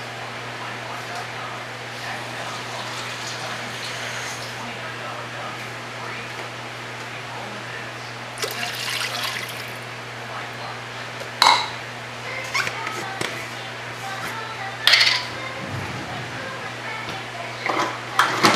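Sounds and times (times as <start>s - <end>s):
low electrical hum: 0.0s - 18.5s
two cups of water pouring into a pot for chicken broth: 8.4s - 9.7s.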